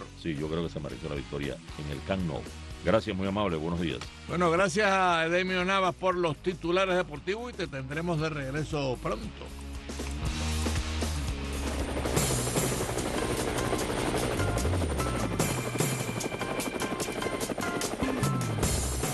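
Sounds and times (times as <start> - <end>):
speech: 0.2 - 9.6
low helicopter engine drone: 9.9 - 19.1
helicopter rotor blades thumping: 10.0 - 19.1.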